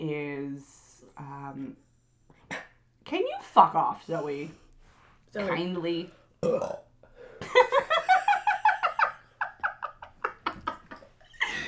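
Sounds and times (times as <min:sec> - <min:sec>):
speech: 0:03.1 - 0:04.6, 0:05.3 - 0:06.8
long loud burp: 0:06.4 - 0:06.9
short croaking belches: 0:06.4 - 0:06.9
laughter: 0:07.4 - 0:11.6.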